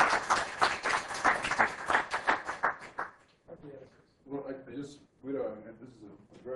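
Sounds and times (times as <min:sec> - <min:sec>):
audience clapping after a short physics talk: 0:00.0 - 0:03.4.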